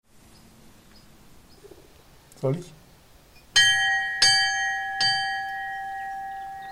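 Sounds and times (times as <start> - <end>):
speech: 2.4 - 2.8
chapel bell ringing gentle strokes: 3.6 - 6.7.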